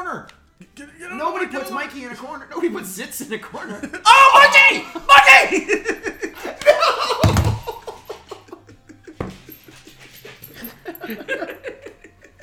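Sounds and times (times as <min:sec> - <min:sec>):
speech: 0:00.0 - 0:07.1, 0:11.1 - 0:11.6
people laughing: 0:03.6 - 0:12.4
dog panting while humping a person's arm: 0:09.4 - 0:11.4.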